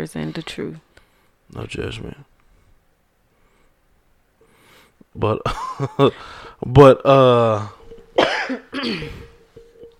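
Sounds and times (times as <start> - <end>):
speech: 0.0 - 0.9, 1.5 - 2.3, 5.2 - 9.2
stifled coughs: 8.2 - 9.4.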